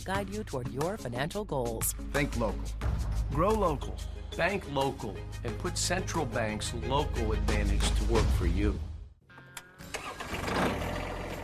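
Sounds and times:
speech: 0.0s - 8.9s
tractor engine cranking, starting and idling: 9.8s - 11.4s.

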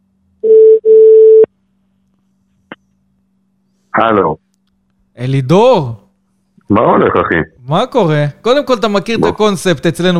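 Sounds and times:
telephone tone pulses as a call is placed: 0.4s - 1.5s
speech: 4.0s - 4.4s, 5.2s - 6.0s, 6.7s - 10.1s.

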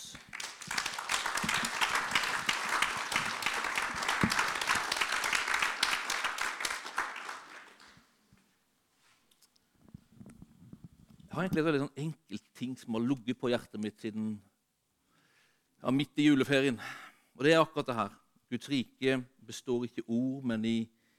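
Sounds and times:
crowd applause: 0.0s - 8.0s
speech: 11.4s - 14.5s, 15.8s - 21.0s.

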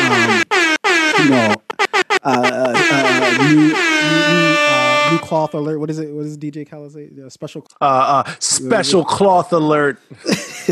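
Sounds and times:
air horn blasts: 0.0s - 5.7s
laughter: 1.3s - 5.5s, 7.9s - 9.3s, 10.1s - 10.7s
speech: 5.5s - 10.7s.

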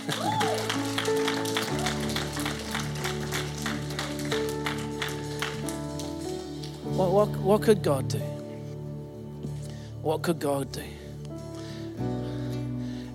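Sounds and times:
speech: 0.0s - 0.4s, 7.0s - 8.4s, 10.0s - 11.0s
audience applause: 0.0s - 6.2s
keyboard or organ chords: 0.0s - 13.1s.

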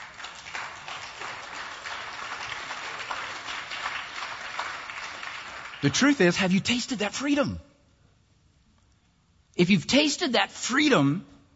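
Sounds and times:
audience clapping: 0.0s - 6.8s
speech: 5.8s - 7.7s, 9.6s - 11.3s.

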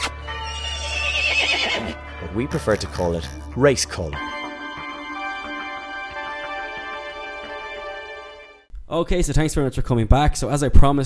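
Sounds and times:
horse neighing: 0.0s - 3.5s
speech: 1.4s - 4.3s, 8.9s - 11.0s.

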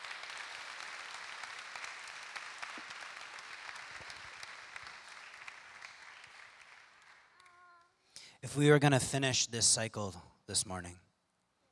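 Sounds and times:
crowd applauding: 0.0s - 7.9s
speech: 8.4s - 11.0s.

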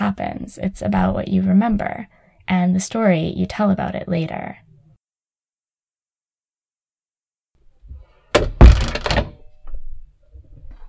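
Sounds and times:
speech: 0.1s - 4.6s
wooden closet door being shut: 8.3s - 9.5s.

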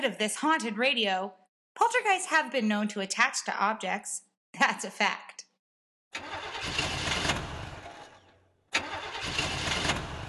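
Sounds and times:
speech: 0.0s - 5.4s, 6.1s - 6.8s
car engine cranking but failing to start: 6.2s - 10.2s.

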